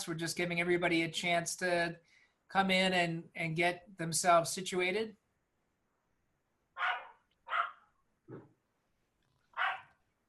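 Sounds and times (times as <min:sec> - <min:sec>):
speech: 0:00.0 - 0:05.2, 0:08.3 - 0:08.5
dog barking in short sharp bursts: 0:06.8 - 0:07.9, 0:09.5 - 0:10.0.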